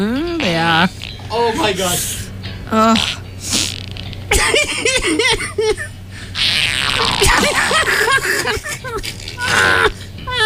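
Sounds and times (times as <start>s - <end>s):
speech: 0.7s - 2.1s, 2.7s - 3.6s, 4.3s - 5.9s
loud blurting fart noises: 2.8s - 4.3s, 6.3s - 7.9s
people laughing: 4.3s - 6.0s, 7.0s - 10.4s.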